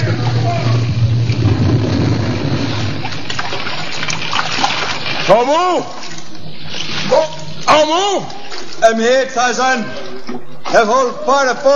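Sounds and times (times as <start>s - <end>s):
deep low rumble: 0.0s - 4.2s
torrent of seawater flooding a burning sinking ship: 0.4s - 9.0s
speech: 5.3s - 6.1s, 7.1s - 11.7s.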